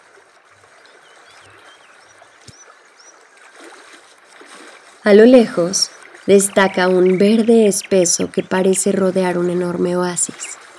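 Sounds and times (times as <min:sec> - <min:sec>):
stream flowing: 0:00.0 - 0:10.7
birds chirping and whistling: 0:00.6 - 0:03.9, 0:04.8 - 0:09.6
speech: 0:05.0 - 0:10.4.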